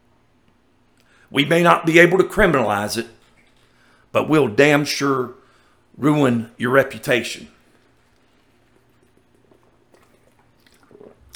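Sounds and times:
low steady hum: 0:00.0 - 0:11.3
speech: 0:01.3 - 0:03.2, 0:04.1 - 0:05.4, 0:06.0 - 0:07.6
person slurping and swallowing while sipping water: 0:07.7 - 0:11.3.

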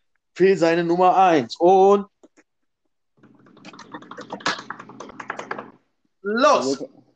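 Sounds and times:
speech: 0:00.4 - 0:02.1, 0:06.2 - 0:07.0
fingers drumming a roll on a tabletop: 0:03.2 - 0:05.8
quick taps on a table: 0:03.2 - 0:05.9.

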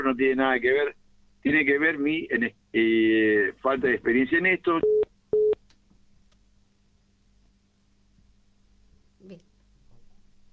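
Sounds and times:
speech: 0:00.1 - 0:05.0
telephone line beeps as a phone call connects: 0:04.8 - 0:05.6.

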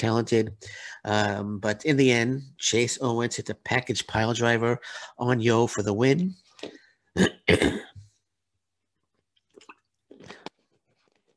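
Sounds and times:
speech: 0:00.0 - 0:07.9
rasping throat sounds: 0:07.2 - 0:08.0
person clearing throat: 0:07.2 - 0:08.1.

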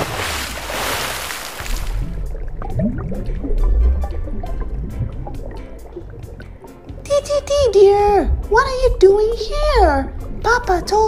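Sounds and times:
big splash into a water tank: 0:00.0 - 0:03.1
water sloshing and bubbling in a tank: 0:00.0 - 0:11.0
speech: 0:07.8 - 0:11.0.

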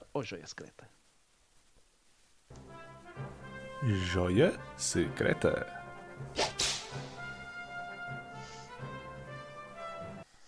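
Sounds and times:
speech: 0:00.2 - 0:01.0, 0:03.8 - 0:06.6
whip cracks: 0:06.4 - 0:07.3.

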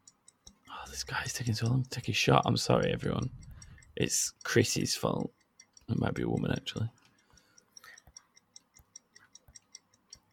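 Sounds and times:
clock ticking: 0:00.0 - 0:10.3
faint hiss: 0:00.6 - 0:05.3
speech: 0:00.9 - 0:07.0.

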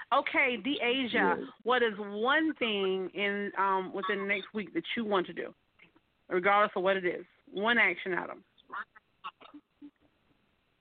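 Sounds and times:
speech: 0:00.1 - 0:05.6, 0:06.3 - 0:09.0
garbled voice over a thin phone line breaking up: 0:01.1 - 0:01.5.

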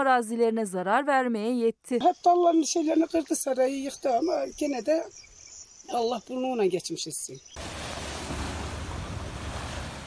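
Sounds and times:
speech: 0:00.0 - 0:05.3, 0:05.9 - 0:07.6
rough sea waves churning and crashing in Erdek Turkey: 0:07.6 - 0:10.0
strong southwest lodos wind roaring against the microphone in Erdek Turkey: 0:07.6 - 0:10.0.

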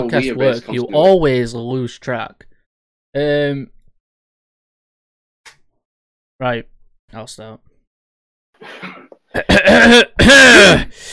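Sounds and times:
speech: 0:00.0 - 0:02.5, 0:03.1 - 0:03.7, 0:06.4 - 0:07.7, 0:08.6 - 0:11.1
rough harsh coughs with strained vocal rasp: 0:08.6 - 0:10.9
throat clearing: 0:08.6 - 0:10.9
breathy exhale: 0:10.9 - 0:11.1.

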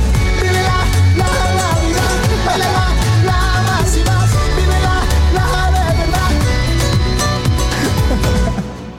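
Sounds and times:
full-band pop song on radio: 0:00.0 - 0:08.9.

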